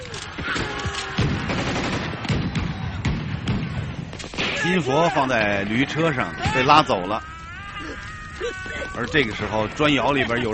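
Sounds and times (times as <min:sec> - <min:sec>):
gunfire as guerrillas shoot at enemy soldiers: 0:00.0 - 0:05.5
speech: 0:04.6 - 0:10.5
laughter: 0:05.1 - 0:10.5.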